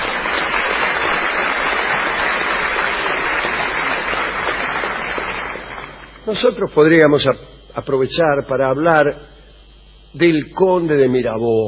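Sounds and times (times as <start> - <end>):
audience applause: 0.0 - 6.3
speech: 6.3 - 9.3, 10.1 - 11.6.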